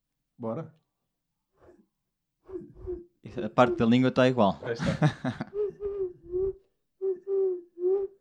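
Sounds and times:
speech: 0.4 - 0.8, 2.5 - 5.6
person imitating turtle dove cooing: 2.5 - 3.1, 5.5 - 8.1
laughter: 4.7 - 5.6.

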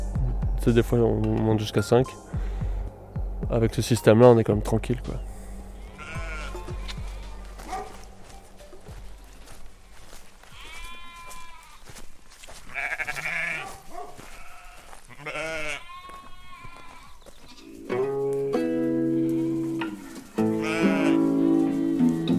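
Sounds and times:
speech: 0.6 - 2.5, 3.5 - 5.3
flock of ewes bleating in the Drôme provençale at Ballon: 5.7 - 8.0, 9.4 - 22.3.

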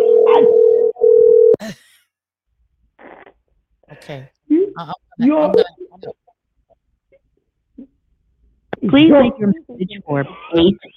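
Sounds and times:
telephone ringback tone during outgoing call: 0.0 - 1.6
speech: 4.1 - 6.2, 8.8 - 10.9.

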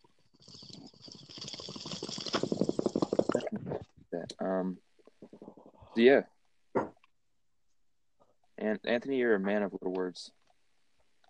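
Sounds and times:
water bong bubbling as a bowl is smoked: 0.4 - 4.4
speech: 4.4 - 4.9, 6.0 - 6.3, 8.6 - 10.4.

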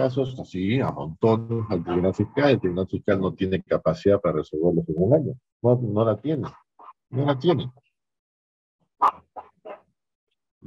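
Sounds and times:
speech: 0.0 - 7.8, 9.0 - 9.2
small dog barking: 9.0 - 9.8.

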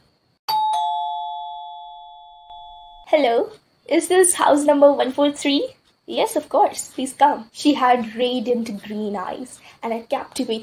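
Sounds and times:
two-tone doorbell chiming: 0.5 - 3.1
speech: 3.1 - 10.6.

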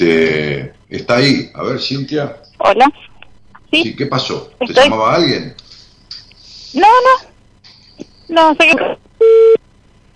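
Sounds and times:
speech: 0.9 - 3.1, 3.7 - 5.6, 6.7 - 7.3, 8.3 - 9.6
electronic phone beep during a phone call: 9.2 - 9.6.

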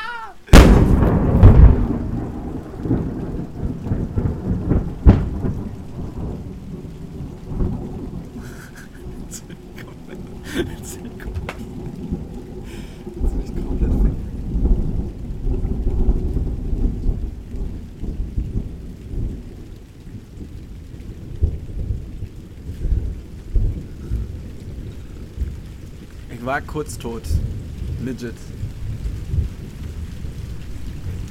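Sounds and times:
steady rain falling: 0.0 - 31.2
loud thunder crack and rumble from a close lightning strike: 0.5 - 31.2
laughter: 8.4 - 11.8
speech: 26.5 - 28.5.

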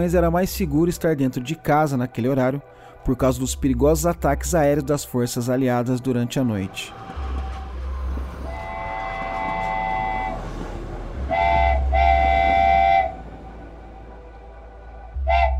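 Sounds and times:
speech: 0.0 - 7.2
low rumble of a train rolling toward a platform: 5.9 - 15.5
train whistle: 7.2 - 15.5.

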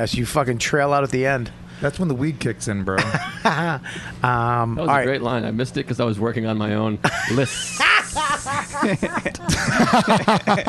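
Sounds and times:
speech: 0.0 - 10.6
man's voiced chuckling sounds: 3.0 - 4.0, 7.0 - 10.6
man's voice imitating a garden snake hissing: 7.4 - 9.1.

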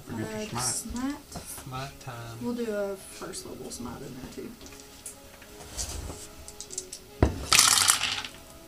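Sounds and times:
speech: 0.2 - 4.8
hard plastic dice rattling down a dice tower: 6.6 - 8.4.

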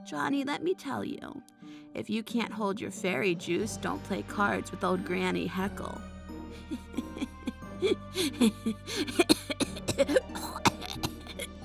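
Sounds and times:
speech: 0.0 - 7.0, 7.8 - 10.5
voice acting out a woman's wheezy laugh: 6.6 - 11.5
phlegmy coughing fit with hacking and throaty sputters: 6.7 - 11.6.

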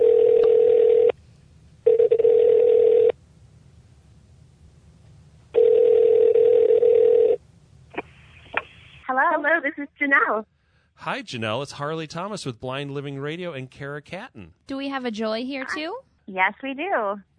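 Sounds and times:
telephone ringback tones: 0.0 - 1.1, 1.9 - 3.2, 5.6 - 7.4
telephone line clicks: 0.3 - 1.1
speech: 9.5 - 17.3.

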